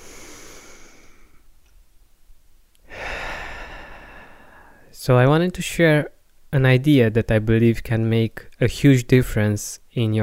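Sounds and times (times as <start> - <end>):
deep breath in and out: 0.0 - 1.5, 2.8 - 4.9
speech: 5.0 - 10.2.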